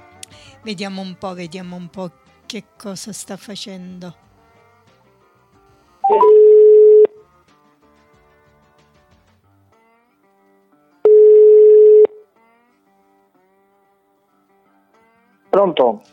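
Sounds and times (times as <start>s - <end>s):
speech: 0.6s - 4.3s, 15.6s - 16.1s
ringback tone on an outgoing phone call: 6.0s - 7.2s, 11.1s - 12.2s.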